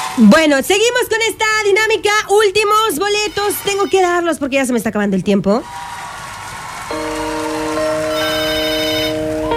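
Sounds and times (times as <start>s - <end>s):
speech: 0.2s - 5.9s
phone ringing with an incoming call: 6.9s - 9.4s.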